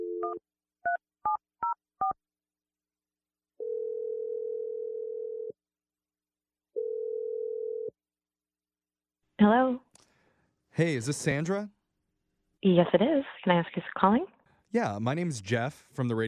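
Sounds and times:
speech: 0.3s - 0.6s, 9.4s - 9.8s, 10.8s - 11.8s, 12.6s - 16.2s
telephone ringing tones: 3.6s - 5.6s, 6.8s - 7.9s.

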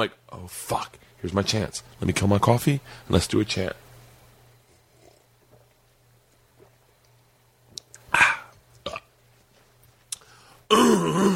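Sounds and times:
speech: 0.0s - 3.8s
person clearing throat: 8.1s - 9.1s, 10.7s - 11.3s.

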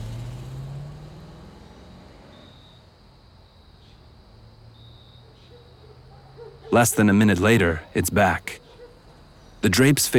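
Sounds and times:
car engine revving and accelerating away at night: 0.0s - 2.8s
steady broadband road noise: 0.0s - 10.1s
speech: 6.7s - 8.6s, 9.6s - 10.1s.

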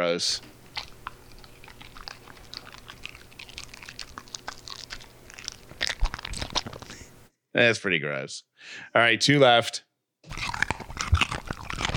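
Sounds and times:
speech: 0.0s - 0.5s, 7.6s - 9.9s
crunching and chewing of a raw carrot: 0.6s - 7.2s, 10.3s - 11.9s.

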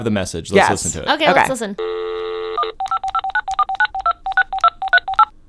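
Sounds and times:
speech: 0.0s - 2.2s
touch-tone dialing of a telephone number: 1.8s - 5.3s.

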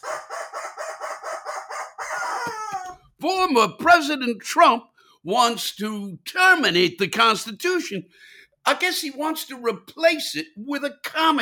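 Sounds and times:
rubber chicken squawking: 0.0s - 3.1s
speech: 2.5s - 11.4s.

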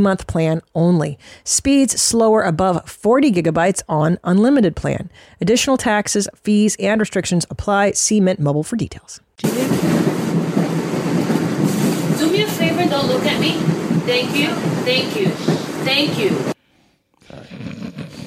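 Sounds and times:
speech: 0.0s - 10.2s, 12.4s - 16.6s
moving subway car rumble from inside: 9.4s - 16.6s.

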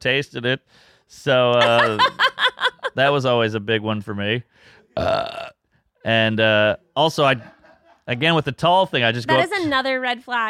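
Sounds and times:
speech: 0.0s - 10.4s
laughter: 1.6s - 3.2s, 7.2s - 8.6s
loud burps: 5.0s - 5.6s.

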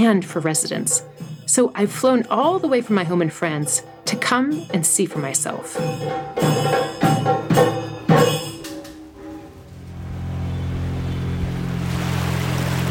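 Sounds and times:
speech: 0.0s - 6.9s
sharp ringing knocks: 3.7s - 9.2s
low engine-like drone of a shikara boat: 9.3s - 12.9s
water washing beneath a shikara boat in a canal: 10.8s - 12.9s.

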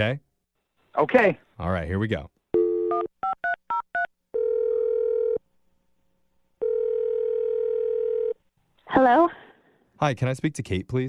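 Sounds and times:
speech: 0.0s - 0.3s, 1.0s - 2.4s, 8.9s - 9.4s, 10.0s - 11.0s
long steady telephone tones: 2.5s - 5.4s, 6.6s - 8.4s.

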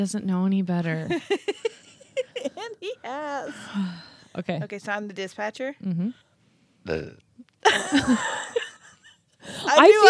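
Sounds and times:
speech: 0.0s - 1.8s, 2.7s - 6.2s, 6.8s - 8.6s, 9.4s - 10.0s
person burping: 6.8s - 7.2s.

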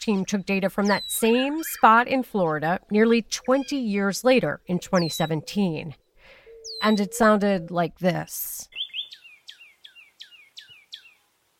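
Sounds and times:
speech: 0.0s - 6.0s, 6.8s - 8.8s
northern cardinal repeating a clear down-slurred whistle in Florida: 4.9s - 5.5s, 6.4s - 7.3s, 8.7s - 11.2s.

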